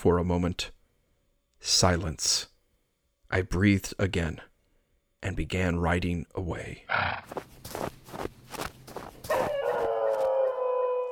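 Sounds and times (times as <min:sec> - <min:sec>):
speech: 0:00.0 - 0:00.8, 0:01.6 - 0:02.5, 0:03.3 - 0:04.5, 0:05.2 - 0:08.3
footsteps crunching: 0:07.2 - 0:10.7
dog howling like a wolf: 0:09.3 - 0:11.1.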